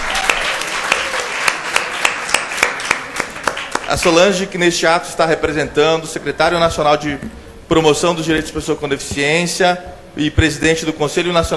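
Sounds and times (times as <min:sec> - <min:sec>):
audience applause: 0:00.0 - 0:04.3
speech: 0:03.9 - 0:11.5.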